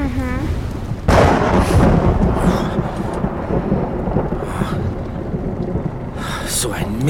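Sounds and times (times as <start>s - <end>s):
thunderclap from lightning striking the mast of a three-masted ship at sea: 0.0s - 7.0s.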